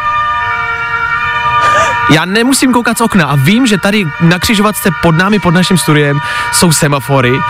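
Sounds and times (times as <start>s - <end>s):
ambulance or fire engine siren wailing at an intersection: 0.0s - 7.4s
low rumble of street traffic at an intersection: 0.0s - 7.4s
speech: 2.1s - 7.4s.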